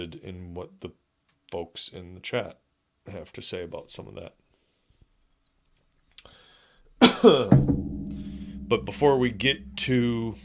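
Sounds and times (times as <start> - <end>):
speech: 0.0 - 4.4, 7.2 - 7.9, 8.7 - 10.4
person coughing: 7.0 - 7.5.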